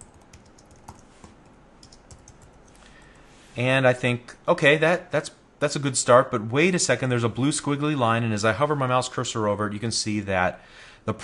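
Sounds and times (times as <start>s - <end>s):
computer keyboard typing: 0.0s - 3.2s
speech: 3.6s - 11.2s.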